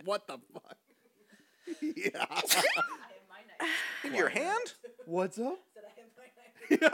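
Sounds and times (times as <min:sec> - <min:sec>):
speech: 0:00.0 - 0:00.8, 0:01.7 - 0:05.7, 0:06.7 - 0:06.9
person sneezing: 0:02.4 - 0:02.9.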